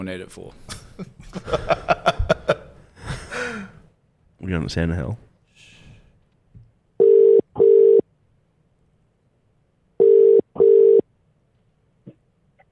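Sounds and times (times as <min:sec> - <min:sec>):
speech: 0:00.0 - 0:02.0, 0:04.5 - 0:05.3
laughter: 0:00.7 - 0:03.5
telephone tones from placing a call: 0:07.0 - 0:08.0, 0:10.0 - 0:11.0.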